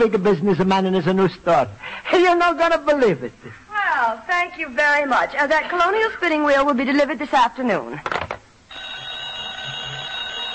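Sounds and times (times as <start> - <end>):
speech: 0.0 - 8.2
telephone bell ringing in an antique shop: 8.7 - 10.5.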